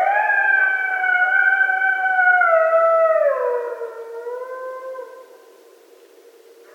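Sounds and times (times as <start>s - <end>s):
coyote howling at night: 0.0s - 5.3s.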